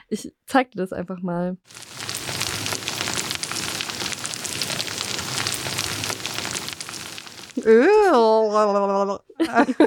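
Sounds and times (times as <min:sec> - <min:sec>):
speech: 0:00.1 - 0:02.5, 0:07.6 - 0:09.8
earthworms burrowing through soil crackling and fizzing underground: 0:01.7 - 0:07.8.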